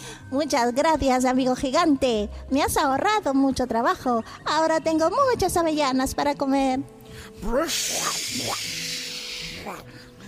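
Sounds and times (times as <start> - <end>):
speech: 0.3 - 8.8
person imitating an elephant's trumpet: 7.5 - 9.9.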